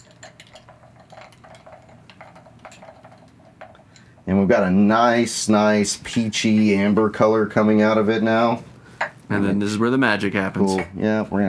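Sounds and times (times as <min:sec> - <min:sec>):
ice clinking in a glass as a drink with maple syrup is stirred: 0:00.0 - 0:04.2
speech: 0:04.2 - 0:08.7, 0:09.3 - 0:11.4.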